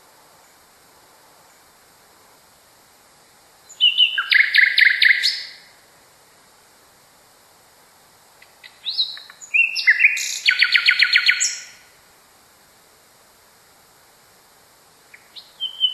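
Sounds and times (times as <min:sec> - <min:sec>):
Common nightingale singing: 0:03.6 - 0:05.7, 0:08.4 - 0:11.9, 0:15.0 - 0:15.9.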